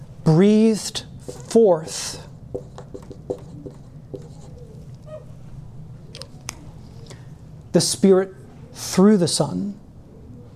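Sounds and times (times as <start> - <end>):
low steady hum: 0.0 - 10.5
speech: 0.3 - 2.6, 7.7 - 9.8
scratchy strokes of drawing on a board during a lecture: 1.2 - 5.3.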